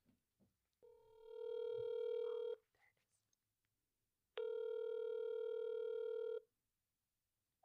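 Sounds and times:
phone line ringing as a call is placed: 1.2s - 2.6s, 4.4s - 6.4s.

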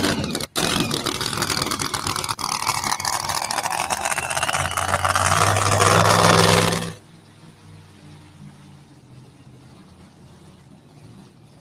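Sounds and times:
supercharged Hemi truck engine running: 0.0s - 7.1s.

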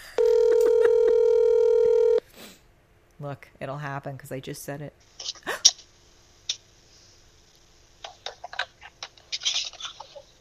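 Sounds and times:
telephone dialing tone as a phone call is placed: 0.2s - 2.2s
speech: 3.2s - 5.5s.

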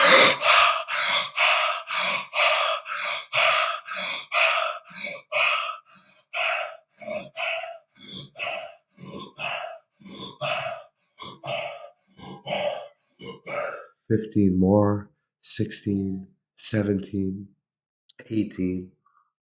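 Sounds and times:
deep cyclic hyperventilating breaths from a breathing exercise: 0.0s - 14.3s
speech: 14.1s - 17.6s, 18.3s - 19.0s.

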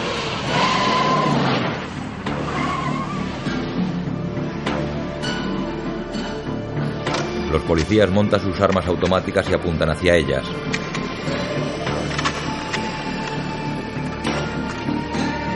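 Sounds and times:
car tires squealing and skidding as it turns towards a cliff edge: 0.0s - 4.6s, 7.7s - 15.5s
car engine at the Colorado canyon: 0.0s - 8.2s, 10.5s - 15.5s
car road noise at the Colorado canyon: 0.0s - 15.5s
speech: 7.7s - 10.8s.

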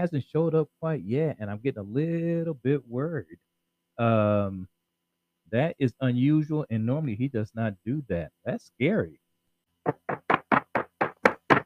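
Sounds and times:
speech: 0.0s - 4.7s, 5.5s - 9.2s, 9.8s - 10.2s
firm knocking on a door: 9.9s - 11.6s.

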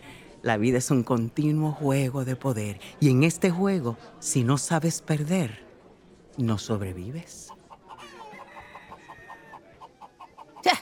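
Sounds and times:
speech: 0.4s - 5.7s, 6.4s - 7.6s
chickens clucking: 7.3s - 10.8s.

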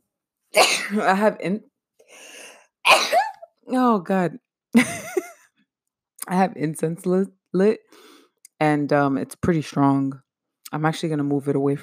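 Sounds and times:
person sneezing: 0.6s - 1.0s, 2.9s - 3.4s
speech: 0.9s - 2.3s, 3.7s - 5.2s, 6.3s - 11.8s.

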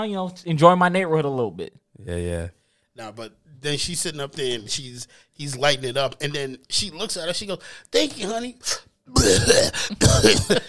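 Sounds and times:
speech: 0.0s - 10.6s
person imitating a harsh throaty cough: 9.1s - 10.6s.

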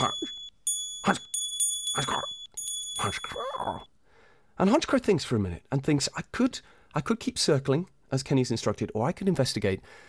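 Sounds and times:
small bell ringing within an aviary: 0.0s - 3.9s
speech: 1.0s - 1.3s, 2.0s - 2.4s, 3.0s - 3.9s, 4.6s - 10.0s.

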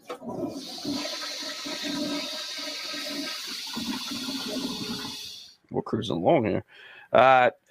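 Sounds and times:
toilet flushing: 0.0s - 5.6s
speech: 5.9s - 7.6s.

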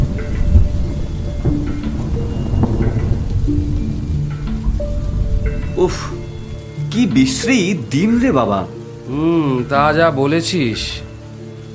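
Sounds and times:
low thunder rumbling in a thunderstorm: 0.0s - 8.8s
heavy rain in a thunderstorm: 0.0s - 11.7s
speech: 5.8s - 6.2s, 7.0s - 11.0s.

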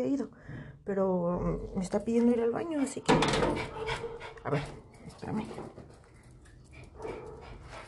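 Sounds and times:
speech: 0.0s - 6.0s
excited dog panting: 2.6s - 4.8s, 6.7s - 7.8s.

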